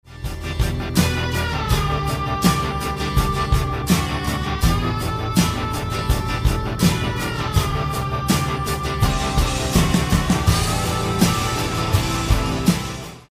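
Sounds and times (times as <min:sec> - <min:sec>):
rock music song loop: 0:00.0 - 0:13.3.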